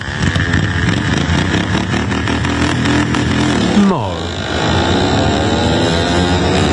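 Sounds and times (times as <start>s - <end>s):
modified ride-on lawnmower engines racing on a dirt track: 0.0s - 6.7s.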